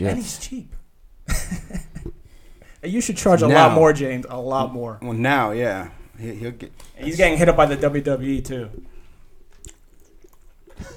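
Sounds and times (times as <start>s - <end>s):
speech: 0.0s - 1.8s, 2.8s - 8.9s
chewing with wet mouth clicks and crunchy bites into a microphone: 8.7s - 10.9s.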